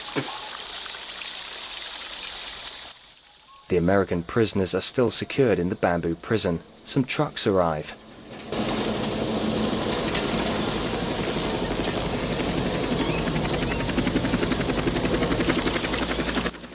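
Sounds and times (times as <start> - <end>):
speech: 3.7 - 8.0
helicopter rotor chop passing over a tree canopy and landing at a camp: 4.6 - 16.7.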